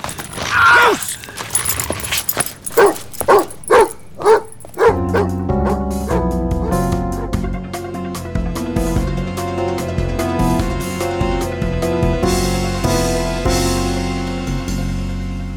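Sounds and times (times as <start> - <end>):
dog barking: 2.7 - 7.4
music with sustained tones: 4.9 - 15.5.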